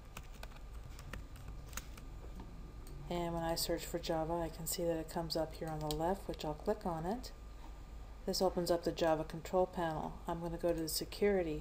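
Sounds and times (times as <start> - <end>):
typing on a computer keyboard connected to a Windows 7 PC: 0.0 - 2.0, 5.6 - 6.0
speech: 3.1 - 7.4, 8.2 - 11.6.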